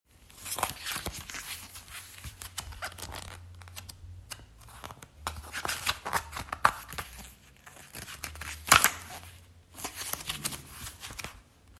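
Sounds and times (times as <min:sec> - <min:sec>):
book page turning: 0:00.2 - 0:11.5.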